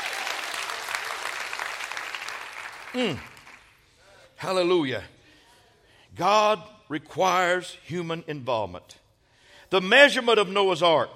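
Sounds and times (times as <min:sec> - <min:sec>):
church audience applauding during a sermon: 0:00.0 - 0:03.8
speech: 0:02.9 - 0:03.3, 0:04.4 - 0:05.2, 0:06.2 - 0:09.0, 0:09.7 - 0:11.1.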